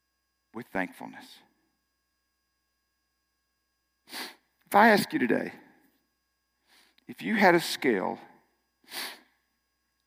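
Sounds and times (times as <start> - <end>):
speech: 0.6 - 1.5, 4.1 - 5.6, 7.1 - 8.3, 8.9 - 9.2
single sharp airy sniff through the nose: 4.1 - 4.4, 8.8 - 9.3.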